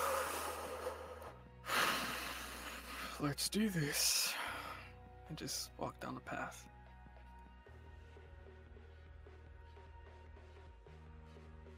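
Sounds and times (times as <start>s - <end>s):
deep breath taken during a calm guided walk: 0.0s - 3.2s
speech: 3.2s - 4.4s, 5.3s - 6.8s.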